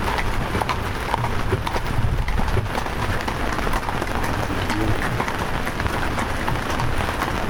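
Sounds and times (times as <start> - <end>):
horse hooves clip-clopping on a gravel path: 0.0 - 7.4
raindrops pattering on a roof: 0.0 - 7.4
wagon wheels rolling over a gravel path: 0.0 - 7.4.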